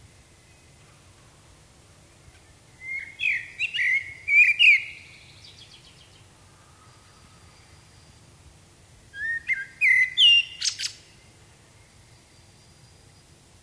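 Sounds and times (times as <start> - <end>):
common blackbird Turdus merula singing: 2.0 - 8.5, 9.1 - 13.4.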